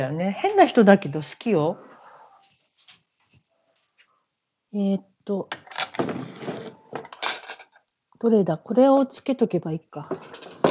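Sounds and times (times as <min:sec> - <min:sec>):
speech: 0:00.0 - 0:01.9, 0:04.7 - 0:05.7, 0:08.2 - 0:10.5
drawer pulled open: 0:05.9 - 0:07.0.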